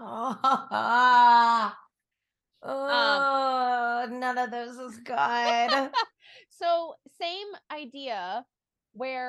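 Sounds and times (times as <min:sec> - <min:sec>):
voice imitating an eerie ghostly wail: 0:00.0 - 0:01.9, 0:02.6 - 0:04.1
speech: 0:00.3 - 0:01.1, 0:04.4 - 0:06.1, 0:07.8 - 0:09.2.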